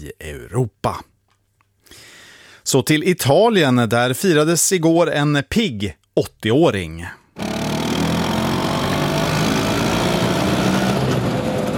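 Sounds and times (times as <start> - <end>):
speech: 0.0 - 1.1, 2.6 - 7.5
Vespa scooter engine running: 7.4 - 11.7.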